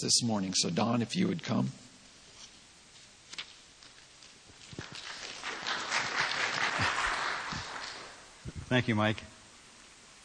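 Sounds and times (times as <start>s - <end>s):
speech: 0.0s - 1.9s, 8.7s - 9.3s
audience applause from a sizable crowd: 4.8s - 8.4s.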